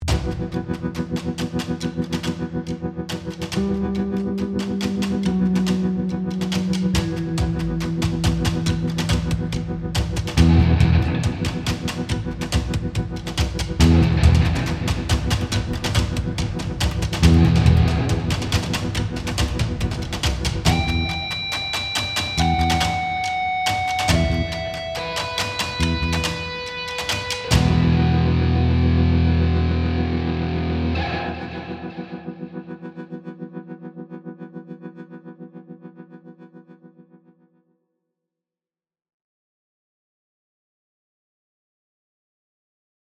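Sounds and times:
distorted guitar: 0.0 - 36.6
synths: 0.0 - 37.4
bass: 4.8 - 21.2, 22.4 - 22.9, 24.0 - 24.6, 25.8 - 26.3, 27.5 - 31.9.

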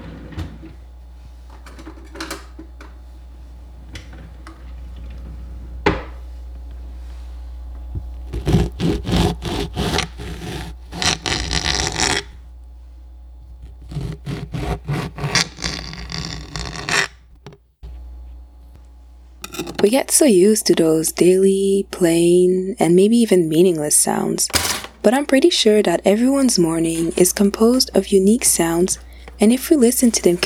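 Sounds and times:
orange being sliced: 8.3 - 12.3, 13.6 - 17.2
speech: 19.8 - 30.4.

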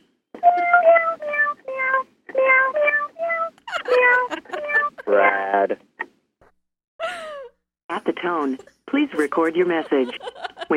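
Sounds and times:
cat meowing insistently: 0.6 - 5.1
laughter: 3.6 - 5.7, 9.2 - 10.7
speech: 4.3 - 5.9, 8.2 - 10.7.

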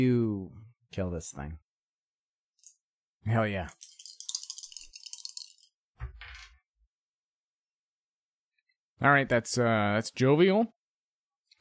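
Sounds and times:
speech: 0.0 - 1.6, 3.2 - 3.9, 9.0 - 10.8
dice rattling in a cupped hand: 3.7 - 5.7
dice tumbling onto a table: 3.7 - 6.6.

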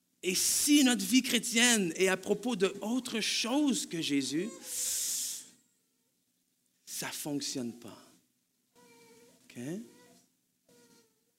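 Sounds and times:
speech: 0.2 - 5.0, 7.0 - 8.1, 9.6 - 9.9
baby in the audience crying: 8.8 - 11.3.

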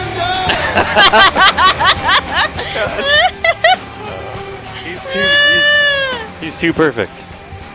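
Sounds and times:
laughter: 0.2 - 6.6
speech: 0.9 - 3.4, 5.1 - 5.4, 6.5 - 7.2
cat meowing high-pitched: 5.0 - 6.3.

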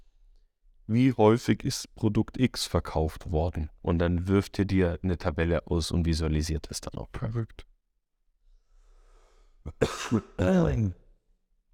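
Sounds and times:
speech: 0.9 - 7.7, 9.6 - 11.0
person coughing: 9.7 - 11.0
rough voiced throat clearing: 9.7 - 11.0.

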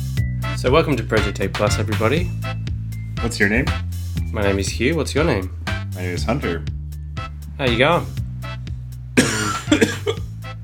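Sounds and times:
speech: 0.6 - 2.6, 3.2 - 6.8, 7.6 - 8.2, 9.7 - 10.0
person in a coughing fit: 9.2 - 10.3.

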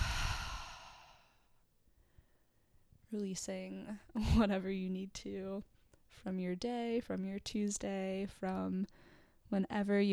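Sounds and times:
slow breathy exhale after inhaling through the nose: 0.0 - 1.4
speech: 3.1 - 10.1.

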